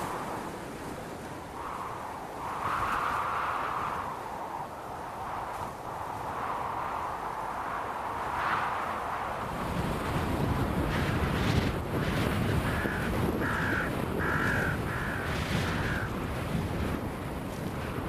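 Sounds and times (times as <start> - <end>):
strong wind buffeting the microphone: 0.0 - 18.0
crows cawing: 12.6 - 16.1.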